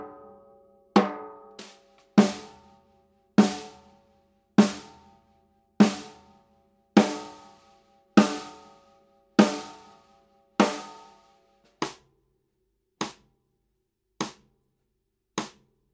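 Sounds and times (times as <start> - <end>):
snare drum hoop solo: 1.0 - 2.7, 3.4 - 3.9, 4.6 - 5.1, 5.8 - 6.3, 7.0 - 10.1, 10.6 - 12.0, 13.0 - 13.2, 14.2 - 14.4, 15.4 - 15.6.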